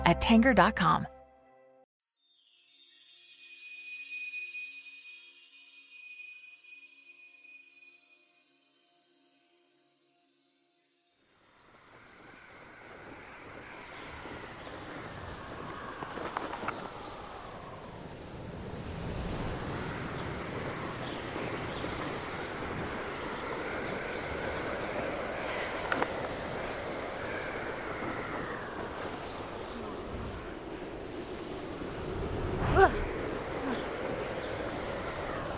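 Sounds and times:
speech: 0.1s - 1.2s
strong wind blowing: 11.5s - 35.5s.

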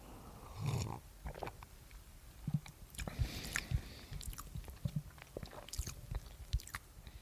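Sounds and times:
person sipping a homemade cocoa drink: 0.5s - 1.6s, 2.5s - 6.8s
gulping and swallowing: 0.6s - 1.6s, 2.4s - 6.9s
wet mouth clicks: 2.5s - 6.9s.

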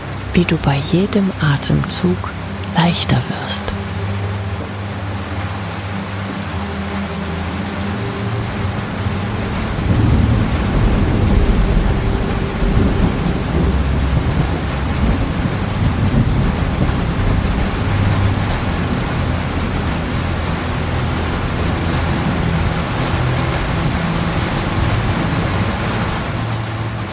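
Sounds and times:
summer rain pouring at night: 0.0s - 27.1s
speech: 0.4s - 3.8s
deep thunder rumbling: 9.4s - 26.3s.

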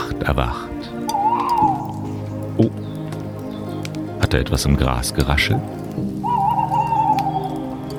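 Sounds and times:
speech: 0.2s - 0.7s, 2.6s - 2.8s, 4.3s - 6.1s
small owl calling in the distance: 1.1s - 4.1s, 5.6s - 7.9s.

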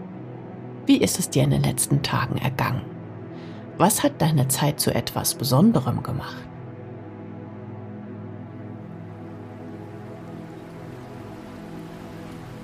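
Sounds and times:
speech: 0.9s - 3.0s, 3.8s - 6.5s
autumn rain shower falling on streets and roofs: 8.8s - 12.6s.

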